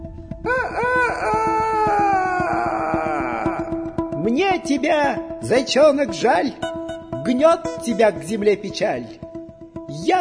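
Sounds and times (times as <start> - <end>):
rooster crowing: 0.4 - 3.7
speech: 4.4 - 6.7, 7.3 - 9.2, 10.0 - 10.2.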